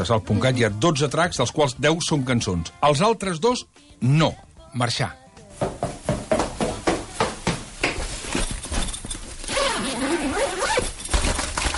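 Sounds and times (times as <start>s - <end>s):
speech: 0.0s - 5.8s
footsteps running down stairs: 5.6s - 9.2s
keys jingling: 8.3s - 11.3s
zipper opening: 9.4s - 11.7s.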